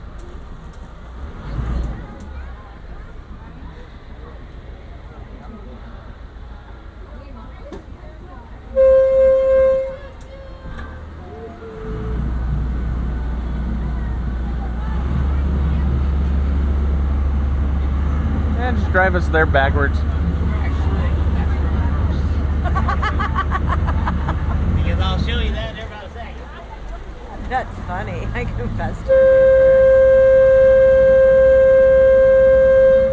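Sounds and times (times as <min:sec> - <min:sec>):
faint crowd murmur: 0:00.0 - 0:31.9
deep engine rumble of a full passenger boat pulling away from dock: 0:00.0 - 0:33.1
brief tonal horn-like blast: 0:08.7 - 0:10.2, 0:28.4 - 0:33.1
speech: 0:19.0 - 0:20.1, 0:27.5 - 0:29.5
laughter: 0:22.3 - 0:25.5.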